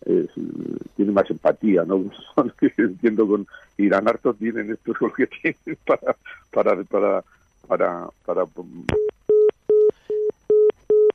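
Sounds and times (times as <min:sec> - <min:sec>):
speech: 0:00.1 - 0:09.2
telephone busy tone after a dropped call: 0:09.0 - 0:11.1.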